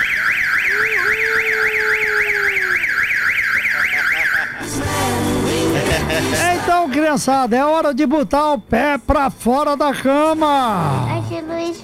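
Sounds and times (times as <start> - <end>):
loud warbling electronic horn: 0.0 - 4.5
laughter: 3.8 - 7.0
speech: 6.8 - 11.8.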